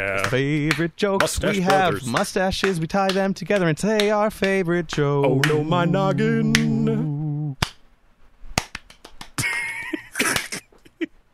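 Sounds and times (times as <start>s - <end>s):
speech: 0.0s - 7.0s
hand clapping: 0.2s - 5.6s, 6.5s - 6.8s, 7.6s - 7.8s, 8.6s - 10.6s.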